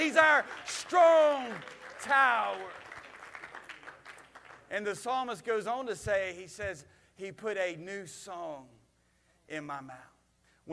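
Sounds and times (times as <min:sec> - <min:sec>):
scattered cheering voices: 0:00.0 - 0:04.0
congregation clapping: 0:00.0 - 0:05.8
speech: 0:00.1 - 0:02.8, 0:04.7 - 0:08.8, 0:09.5 - 0:10.1.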